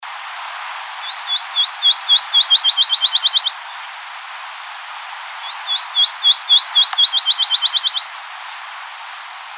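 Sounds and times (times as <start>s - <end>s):
faint background hiss: 0.0s - 9.5s
Field sparrow song: 1.0s - 3.8s, 5.0s - 8.1s.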